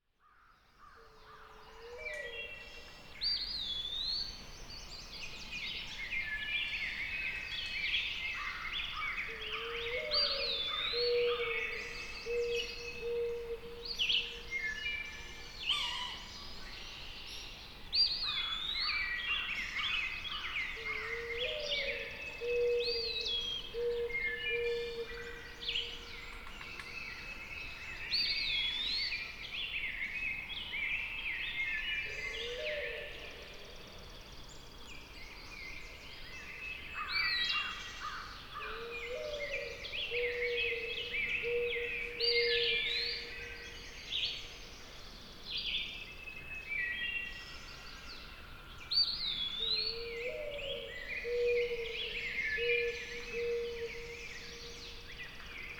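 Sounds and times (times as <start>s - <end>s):
woodland birds singing at dawn: 0.1s - 55.7s.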